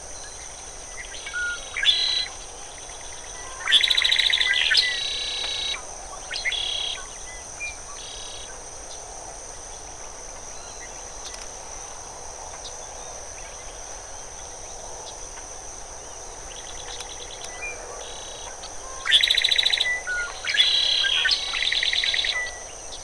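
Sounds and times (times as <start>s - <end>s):
Red-winged blackbird Agelaius phoeniceus calling: 1.3s - 2.3s, 3.4s - 5.8s, 18.9s - 22.6s.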